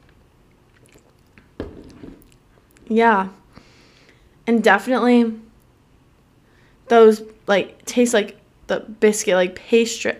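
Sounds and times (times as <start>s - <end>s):
wet slurp: 0.5s - 1.4s
person sipping a raspberry chocolate drink: 0.5s - 2.9s
speech: 2.9s - 3.4s, 4.5s - 5.4s, 6.9s - 10.1s.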